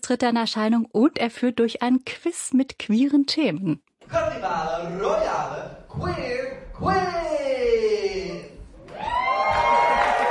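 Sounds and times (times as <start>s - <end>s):
speech: 0.1s - 7.2s
enthusiastic theatre audience cheering and whooping: 8.8s - 10.2s.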